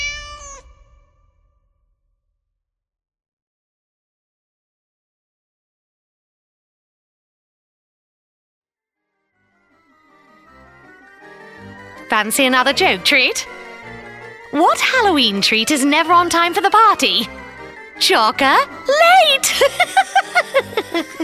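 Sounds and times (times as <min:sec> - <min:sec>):
black cat meowing loudly: 0:00.0 - 0:01.2
speech: 0:12.1 - 0:13.6, 0:14.6 - 0:17.4, 0:18.0 - 0:21.2
laughter: 0:19.4 - 0:21.2.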